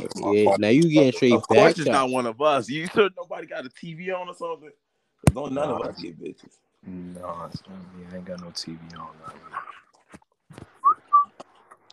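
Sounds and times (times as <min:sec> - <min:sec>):
murmurs: 0:00.0 - 0:03.0, 0:05.4 - 0:06.3, 0:06.9 - 0:09.8
speech: 0:00.0 - 0:10.2
person whistling two notes: 0:10.8 - 0:11.3.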